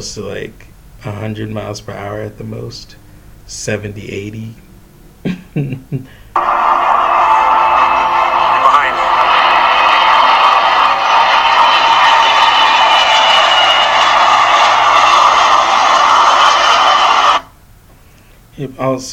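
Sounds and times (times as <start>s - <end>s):
speech: 0.0s - 4.6s, 5.2s - 6.6s, 18.6s - 19.1s
airplane landing close overhead: 6.4s - 17.4s.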